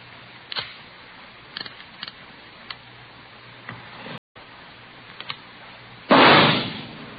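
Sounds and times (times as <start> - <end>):
.38 caliber revolver test shot fired into a ballistics box in a police lab: 6.1 - 7.1.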